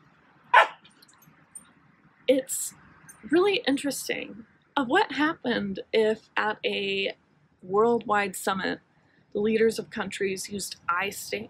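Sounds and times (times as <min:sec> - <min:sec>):
dog barking: 0:00.5 - 0:00.8
soft yip: 0:00.6 - 0:00.8
speech: 0:02.3 - 0:11.4.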